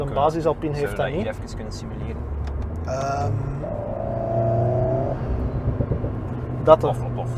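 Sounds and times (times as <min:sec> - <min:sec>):
speech: 0:00.0 - 0:04.0, 0:06.6 - 0:07.3
programmed crackling exhaust pops of four-cylinder sports car: 0:01.5 - 0:07.3
four-cylinder sports car with active exhaust revving in sport and track mode: 0:01.6 - 0:07.3.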